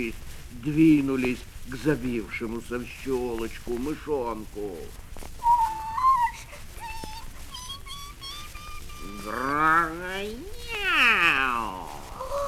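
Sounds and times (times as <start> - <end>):
speech: 0.0 - 5.0, 9.2 - 11.3
faint thin high-pitched squeaks and chirps: 5.3 - 12.4
cat meowing: 5.4 - 12.4.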